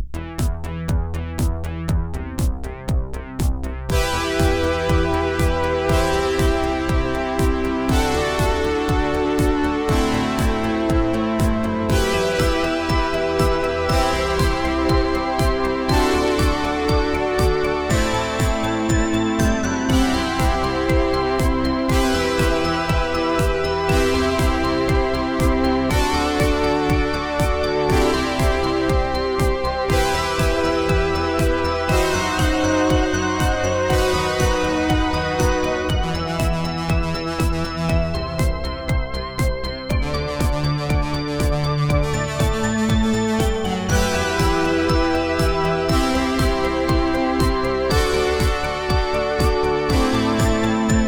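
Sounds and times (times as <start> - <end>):
synthwave music: 0.2 - 51.0.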